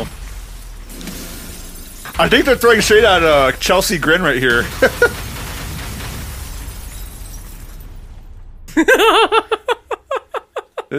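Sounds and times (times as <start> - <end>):
glass breaking: 0.0 - 10.6
speech: 2.2 - 5.2
high warbling laugh-like vocal sounds: 8.8 - 10.9.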